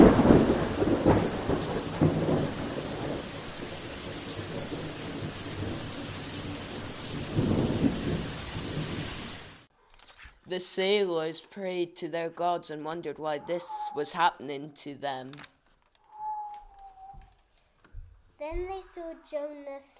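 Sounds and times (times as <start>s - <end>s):
heavy rain hissing: 0.0s - 9.7s
low thunder rumbling: 0.0s - 9.7s
speech: 10.5s - 15.5s, 18.4s - 19.9s.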